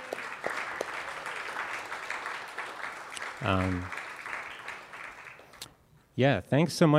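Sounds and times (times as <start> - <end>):
loud cheer or shout: 0.0 - 5.3
crowd applauding: 0.0 - 5.7
speech: 3.4 - 4.0, 6.2 - 6.9.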